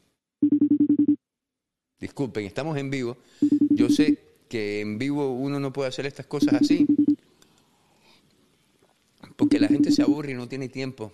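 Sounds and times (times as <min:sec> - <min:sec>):
phone ringing with a rapid electronic trill: 0:00.4 - 0:01.2, 0:03.4 - 0:04.2, 0:06.4 - 0:07.2, 0:09.4 - 0:10.2
speech: 0:02.0 - 0:07.0, 0:10.2 - 0:11.1.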